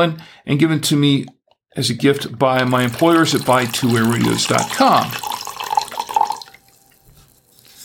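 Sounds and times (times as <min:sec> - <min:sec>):
speech: 0:00.0 - 0:05.3
light-bodied wine poured into an Irish Galway crystal glass: 0:02.5 - 0:07.0.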